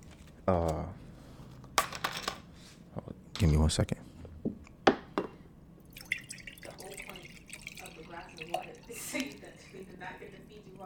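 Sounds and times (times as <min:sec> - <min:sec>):
speech: 0:00.5 - 0:01.0, 0:03.4 - 0:04.0
water pouring and dripping into a cup: 0:05.8 - 0:10.8
sharp clinks of glass: 0:05.9 - 0:09.4.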